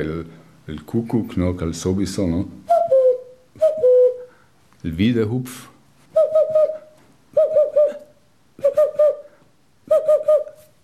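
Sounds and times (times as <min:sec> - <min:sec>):
speech: 0:00.0 - 0:02.6, 0:04.8 - 0:05.7
boreal owl hooting: 0:02.6 - 0:04.4, 0:06.1 - 0:10.8.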